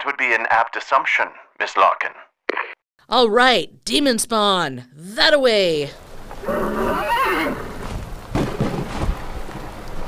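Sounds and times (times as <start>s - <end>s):
speech: 0.1s - 6.6s
steady wash of rain or wind: 5.2s - 10.0s
horse's high wavering whinny: 6.4s - 7.8s
thunder from a sudden storm rumbling and cracking: 7.7s - 10.0s.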